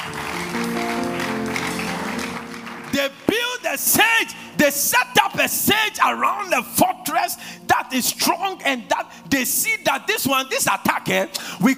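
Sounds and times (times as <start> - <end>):
church audience applause as an offering to God: 0.0 - 3.4
speech: 3.8 - 11.7.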